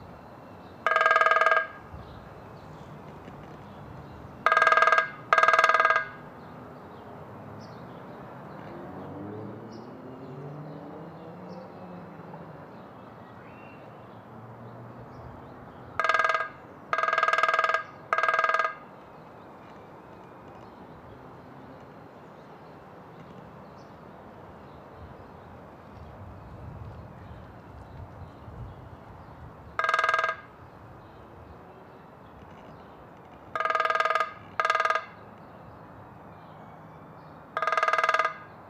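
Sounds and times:
grey-headed woodpecker drumming: 0.7s - 2.0s, 4.4s - 6.3s, 16.0s - 19.0s, 29.7s - 30.6s, 33.5s - 35.2s, 37.6s - 38.5s.

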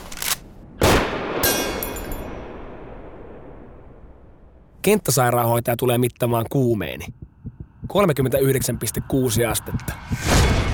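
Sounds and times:
rifle shots outdoors: 0.8s - 1.8s
rifle shots hitting sheet-metal targets: 1.4s - 2.3s
speech: 4.9s - 7.3s, 7.9s - 10.7s.

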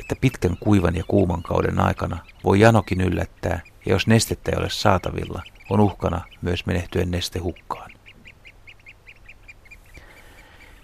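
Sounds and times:
Eurasian oystercatcher shrill piping calls: 0.0s - 10.8s
speech: 0.1s - 7.9s.

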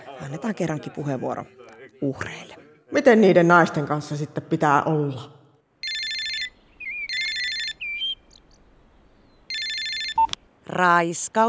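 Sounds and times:
speech: 0.2s - 5.4s, 10.7s - 11.4s
telephone ringing in bright electronic bursts: 5.8s - 8.1s, 9.5s - 10.4s.

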